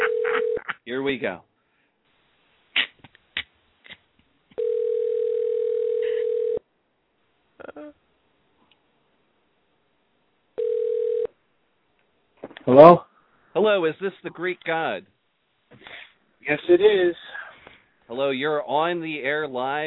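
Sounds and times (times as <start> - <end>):
landline telephone dial tone: 0.0 - 0.6, 4.6 - 6.6, 10.6 - 11.3
speech: 0.9 - 1.5, 12.8 - 13.0, 13.6 - 17.4, 18.1 - 19.8.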